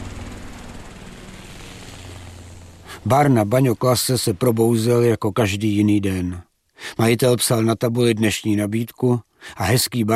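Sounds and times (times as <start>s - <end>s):
distant helicopter droning over the sea: 0.0s - 6.0s
speech: 3.0s - 10.1s.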